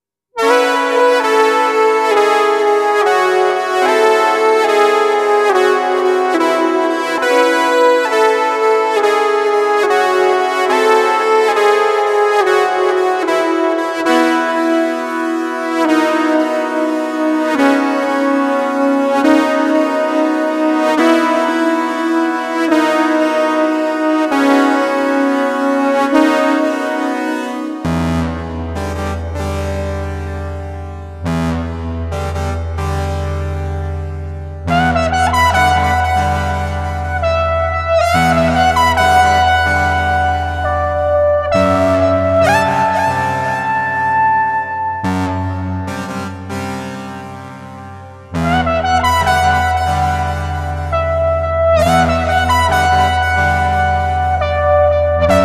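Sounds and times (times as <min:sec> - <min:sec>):
electronic wind instrument: 0:00.4 - 0:55.4.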